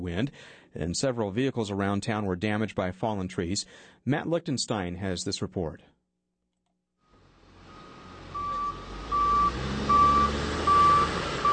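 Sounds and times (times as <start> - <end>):
speech: 0.0 - 5.9
low rumbling diesel engine of heavy equipment: 7.2 - 11.5
reversing beeps from backhoes and heavy equipment clearing a landslide on a highway: 7.7 - 11.5.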